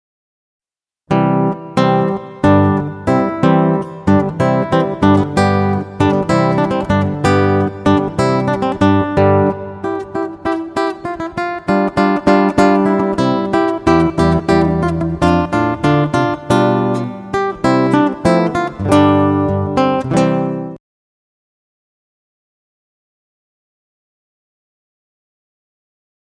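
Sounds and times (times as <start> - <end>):
dance guitar music: 1.1 - 20.8.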